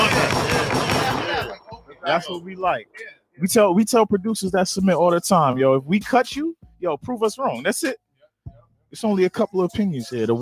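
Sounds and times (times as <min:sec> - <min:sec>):
gunshot sound effects: 0:00.0 - 0:01.6
speech: 0:02.1 - 0:10.3.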